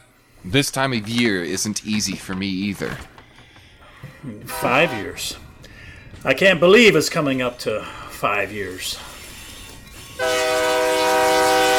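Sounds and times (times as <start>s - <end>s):
speech: 0.4s - 3.1s, 4.2s - 5.4s, 6.2s - 9.1s
train horn in one long sustained blast: 4.5s - 5.4s, 10.0s - 11.7s.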